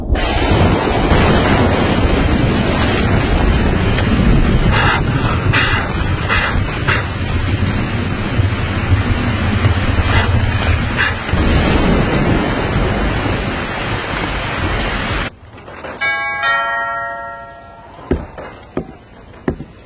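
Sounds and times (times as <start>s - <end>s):
dense rain falling outside: 0.2s - 19.8s
brief tonal chimes: 16.0s - 18.4s
soft knocks: 18.0s - 19.8s.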